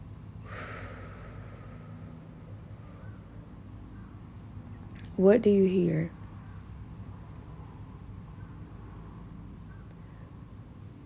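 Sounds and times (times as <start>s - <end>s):
low noise: 0.0s - 11.0s
breathy exhale after a held breath: 0.4s - 3.4s
speech: 5.2s - 6.2s.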